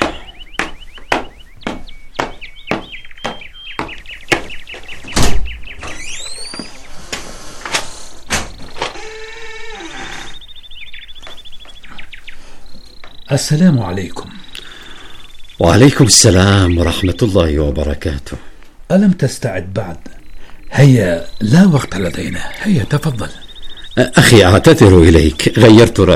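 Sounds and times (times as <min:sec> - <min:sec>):
sharp knocks on a door: 0:00.0 - 0:04.6
bird chirps: 0:00.0 - 0:26.1
speech: 0:13.3 - 0:14.3, 0:15.6 - 0:23.4, 0:24.0 - 0:26.1.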